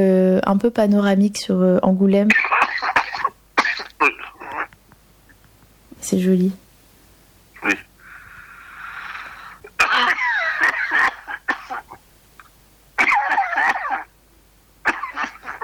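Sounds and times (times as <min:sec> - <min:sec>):
speech: 0:00.0 - 0:02.6, 0:06.1 - 0:06.6, 0:07.6 - 0:07.9
heavy harsh coughing fit: 0:02.3 - 0:04.7, 0:07.6 - 0:12.0, 0:13.0 - 0:14.2, 0:14.8 - 0:15.6.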